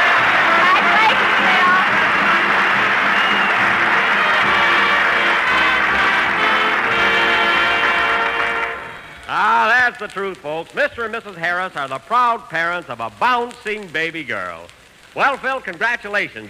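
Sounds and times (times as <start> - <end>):
crowd murmur: 0.0 - 9.4
large audience applauding loudly: 0.0 - 9.8
speech: 10.0 - 16.4.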